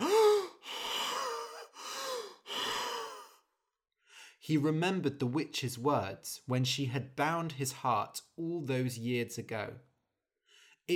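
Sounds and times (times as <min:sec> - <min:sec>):
man breathing raggedly: 0:00.0 - 0:04.4
man gasping for air: 0:00.0 - 0:04.4
speech: 0:04.5 - 0:09.9.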